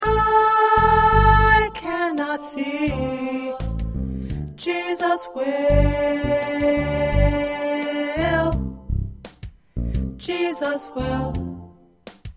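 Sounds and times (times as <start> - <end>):
tenor voice singing: 0.0 - 3.8, 4.6 - 8.7, 10.2 - 11.7.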